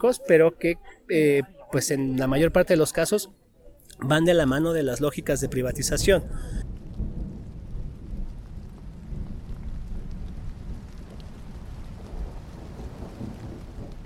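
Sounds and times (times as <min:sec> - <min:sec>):
speech: 0:00.0 - 0:06.7
heavy rain: 0:04.0 - 0:14.0.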